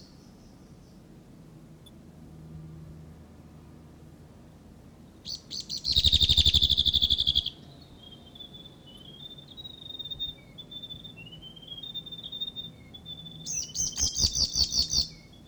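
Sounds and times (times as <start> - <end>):
male whitehead giving a territorial call: 5.2 - 15.4.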